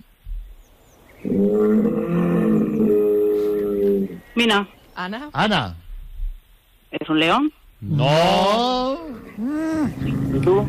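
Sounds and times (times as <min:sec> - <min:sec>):
speech: 0:01.2 - 0:03.0, 0:04.4 - 0:05.8, 0:07.1 - 0:10.6
bull bellowing: 0:01.2 - 0:04.2, 0:07.8 - 0:10.6.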